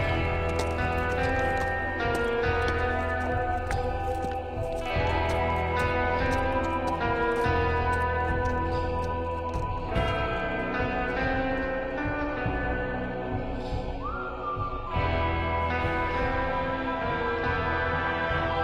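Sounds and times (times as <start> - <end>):
saddled horse's hooves plodding at a walking pace: 0.0 - 12.6
steady sustained musical backdrop: 0.0 - 18.6.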